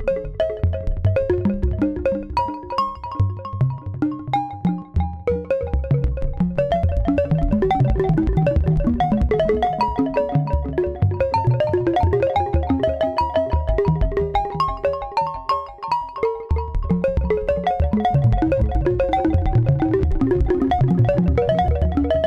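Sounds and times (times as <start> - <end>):
FM synth marimbas: 0.1 - 22.2.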